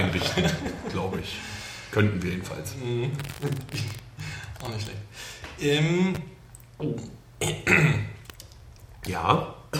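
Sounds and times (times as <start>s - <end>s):
laughter: 0.0s - 1.4s
speech: 0.2s - 8.2s, 9.0s - 9.7s
person coughing: 7.4s - 8.2s
throat clearing: 7.4s - 8.2s.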